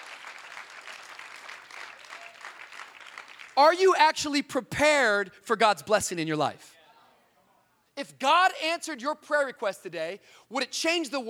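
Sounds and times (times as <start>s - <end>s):
audience clapping: 0.0s - 3.7s
speech: 3.6s - 6.8s, 8.0s - 11.2s.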